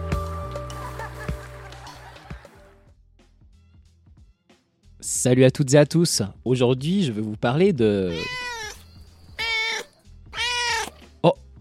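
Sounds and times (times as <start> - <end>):
laughter: 0.7 - 2.8
speech: 5.0 - 8.4
cat meowing: 8.1 - 11.0.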